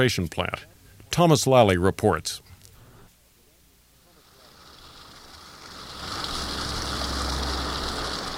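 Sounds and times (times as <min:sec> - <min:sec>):
speech: 0:00.0 - 0:02.4
mountain creek water flowing: 0:04.0 - 0:08.3.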